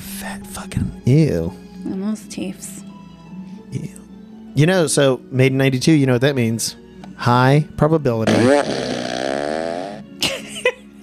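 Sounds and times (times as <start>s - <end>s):
speech: 0.2s - 2.8s, 3.7s - 4.0s, 4.6s - 8.9s
fart machine toy blurting: 8.3s - 10.0s.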